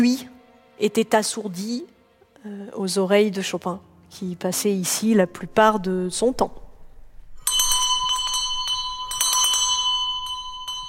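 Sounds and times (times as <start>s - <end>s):
speech: 0.0s - 6.6s
servant's call bell ringing: 7.4s - 10.8s.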